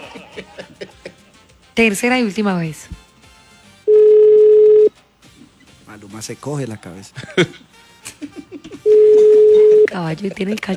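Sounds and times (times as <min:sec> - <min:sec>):
laughter: 0:00.0 - 0:01.5, 0:06.7 - 0:10.7
speech: 0:01.8 - 0:03.0, 0:06.2 - 0:07.7, 0:10.0 - 0:10.7
ringback tone of an unanswered late-night phone call: 0:03.9 - 0:04.9, 0:08.9 - 0:10.0.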